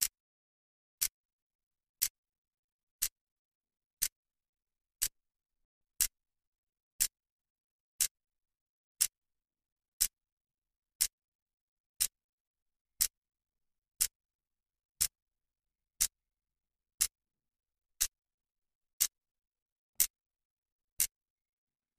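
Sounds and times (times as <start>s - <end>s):
clock hand: 0.0s - 0.2s, 1.0s - 1.2s, 1.9s - 2.3s, 2.9s - 3.3s, 3.9s - 4.3s, 4.9s - 5.3s, 5.9s - 6.3s, 6.9s - 7.3s, 7.9s - 8.3s, 8.9s - 9.3s, 9.9s - 10.3s, 10.9s - 11.3s, 11.9s - 12.3s, 12.9s - 13.3s, 13.9s - 14.3s, 14.9s - 15.3s, 15.9s - 16.3s, 16.9s - 17.2s, 17.9s - 18.3s, 18.9s - 21.9s.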